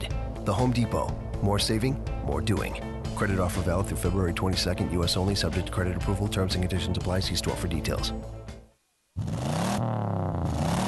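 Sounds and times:
speech: 0.4 - 8.4
car engine revving: 9.2 - 10.8.

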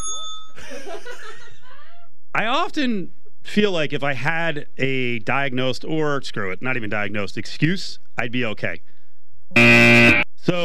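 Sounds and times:
small bell struck: 0.0 - 0.6
laughter: 0.6 - 2.1
speech: 0.7 - 1.5, 2.4 - 8.9, 9.5 - 10.6.

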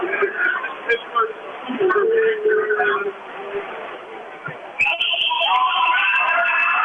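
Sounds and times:
noisy crowd murmur in a large indoor arena: 0.0 - 6.8
high referee's whistle blast for a foul in a basketball game: 4.8 - 6.4.

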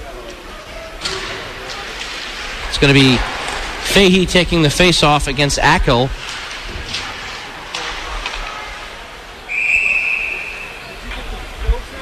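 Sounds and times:
speech: 2.8 - 3.3, 3.9 - 6.2
shrill referee's whistle blast at a college ice hockey game: 9.5 - 10.9.

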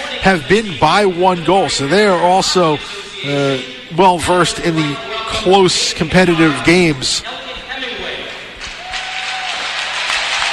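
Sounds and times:
speech: 0.2 - 7.4
large arena crowd applauding and cheering: 8.6 - 10.5.

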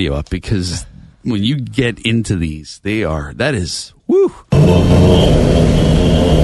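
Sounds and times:
speech: 0.0 - 6.4
person making a low rough growl: 4.5 - 6.4.

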